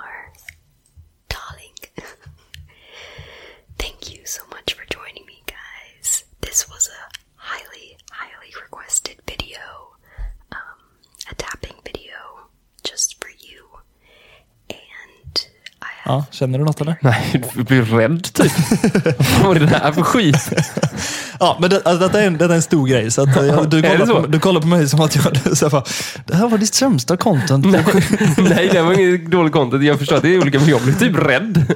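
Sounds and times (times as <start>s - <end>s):
soft breathy ASMR whispering: 0.0s - 0.6s, 1.3s - 2.4s, 3.7s - 17.2s
speech: 16.1s - 31.7s
laughter: 18.4s - 24.4s, 25.0s - 26.4s, 27.3s - 31.7s.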